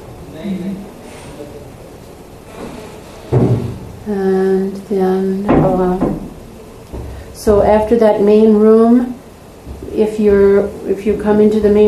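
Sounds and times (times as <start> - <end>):
speech: 0.4 - 0.9, 4.1 - 6.1, 7.4 - 9.2, 10.0 - 11.8
front door shutting with a solid thud: 2.5 - 3.9.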